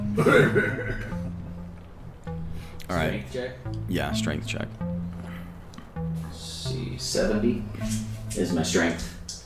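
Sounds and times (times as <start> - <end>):
person coughing sharply: 0.1 - 1.1
speech: 0.2 - 1.0, 2.9 - 5.0, 6.7 - 9.4.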